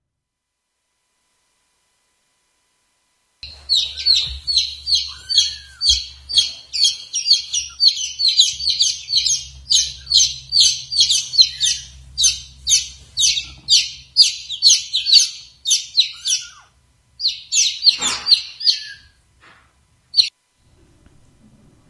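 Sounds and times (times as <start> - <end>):
baby chicks peeping in rapid high-pitched chirps: 3.4 - 19.2, 20.1 - 20.3.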